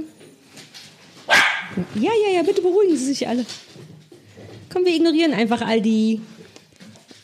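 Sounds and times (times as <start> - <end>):
dog barking: 1.3 - 1.8
speech: 1.8 - 3.7, 4.7 - 6.4.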